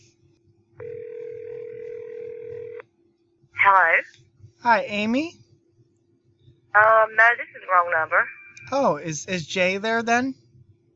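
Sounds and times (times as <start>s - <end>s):
cell phone ringing tone over the line: 0.8s - 2.8s
speech: 3.7s - 5.4s, 6.8s - 10.4s.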